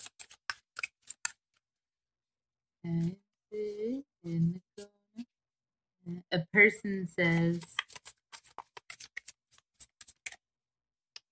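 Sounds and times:
deck of cards being shuffled with crisp riffling: 0.0s - 1.6s, 7.2s - 10.4s
speech: 2.8s - 4.6s, 6.3s - 7.8s.

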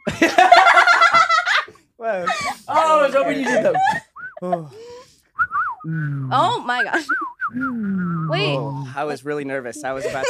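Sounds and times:
laughter: 0.0s - 4.8s, 9.7s - 10.2s
speech: 3.2s - 4.9s, 5.8s - 10.2s
person whistling: 4.2s - 4.6s, 5.4s - 8.9s
voice giving a drawn-out falling exclamation: 5.9s - 6.9s, 7.6s - 9.0s.

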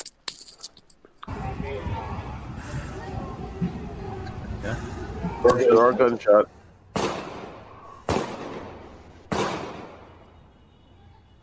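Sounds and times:
speech: 5.4s - 6.6s
gunshots from a video being played: 6.9s - 10.2s.

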